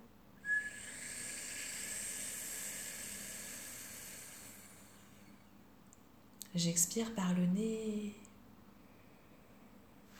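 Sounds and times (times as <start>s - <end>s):
whistling breath drawn in through the mouth during a breathing exercise: 0.4s - 5.4s
speech: 6.5s - 8.3s.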